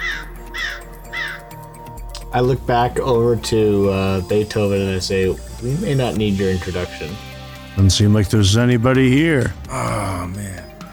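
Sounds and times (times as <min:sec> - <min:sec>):
crows cawing: 0:00.0 - 0:01.8
speech: 0:02.3 - 0:10.7.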